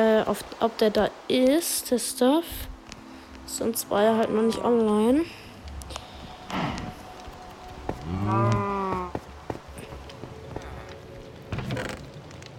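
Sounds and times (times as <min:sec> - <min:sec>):
speech: 0:00.0 - 0:02.7, 0:03.5 - 0:05.4, 0:06.5 - 0:07.0, 0:08.1 - 0:08.7
sounds: 0:02.5 - 0:12.2
cow mooing: 0:08.0 - 0:09.1.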